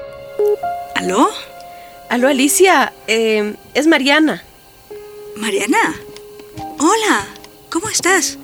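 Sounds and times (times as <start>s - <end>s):
electronic phone keypad tones dialing a number: 0.3s - 8.4s
speech: 1.0s - 1.4s, 2.1s - 4.5s, 5.4s - 6.1s, 6.8s - 8.4s.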